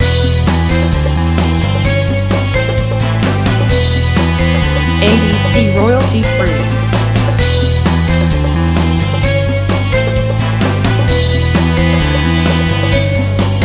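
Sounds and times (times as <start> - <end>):
spy music loop: 0.0 - 13.6.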